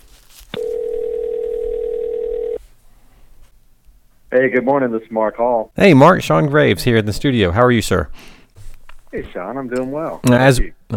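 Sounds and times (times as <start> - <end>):
phone line tone while a call is dialed out: 0.6 - 2.6
speech: 4.3 - 8.4, 9.1 - 10.9.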